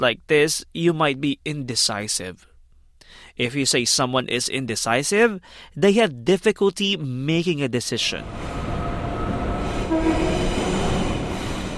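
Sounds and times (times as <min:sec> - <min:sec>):
speech: 0:00.0 - 0:08.7
train rumbling along the rails: 0:08.1 - 0:11.7.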